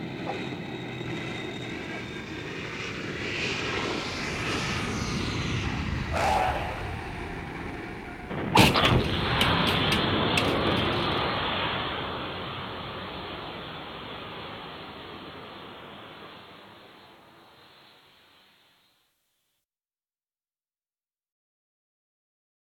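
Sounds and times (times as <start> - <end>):
jet crashing on runway: 0.2 - 17.3.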